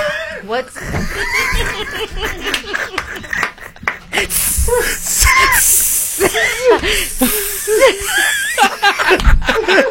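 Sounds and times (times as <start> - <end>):
snickering laughter: 1.0 - 5.5, 6.2 - 9.8
person imitating a snake with drawn-out hissing: 4.3 - 8.2.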